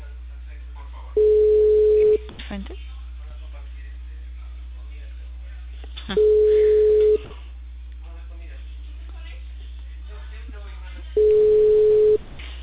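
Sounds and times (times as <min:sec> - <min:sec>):
voices: 0:00.0 - 0:12.6
ringing tones of an unanswered telephone call: 0:01.2 - 0:02.3, 0:06.2 - 0:07.3, 0:11.2 - 0:12.2.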